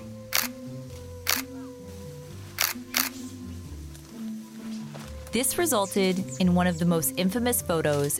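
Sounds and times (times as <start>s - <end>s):
soft low sustained music-like tones: 0.0s - 8.1s
camera shutter clicks: 0.3s - 0.6s, 1.2s - 1.5s, 2.6s - 3.2s
speech: 5.3s - 8.1s.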